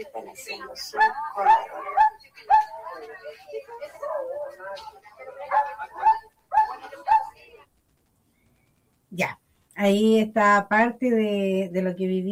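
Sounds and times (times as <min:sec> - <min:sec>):
speech: 0:00.0 - 0:02.5, 0:09.1 - 0:12.3
dogs barking, yipping and whimpering at a veterinary care event in a stadium: 0:00.9 - 0:03.0, 0:03.8 - 0:07.4.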